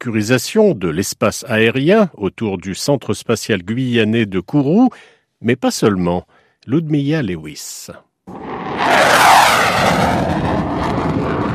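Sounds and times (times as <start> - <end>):
speech: 0.0 - 10.9
Rafale fighter jet roaring overhead: 8.3 - 11.5.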